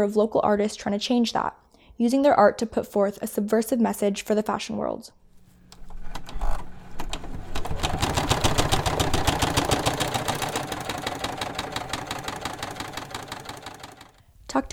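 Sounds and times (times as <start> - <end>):
speech: 0.0 - 5.2
sewing machine stitching at a desk in a basement apartment: 5.9 - 14.3.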